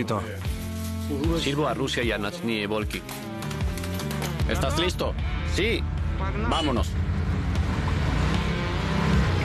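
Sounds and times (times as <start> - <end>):
speech: 0.0 - 0.5, 1.1 - 3.3, 4.5 - 7.1
motorcycle engine revving and pulling away: 3.1 - 9.4.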